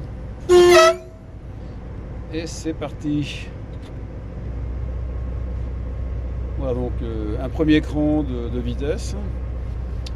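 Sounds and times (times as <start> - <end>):
low mechanical rumble of a railcar: 0.0 - 10.1
railcar horn blast as the train departs: 0.5 - 1.2
speech: 2.3 - 3.6, 6.6 - 9.4.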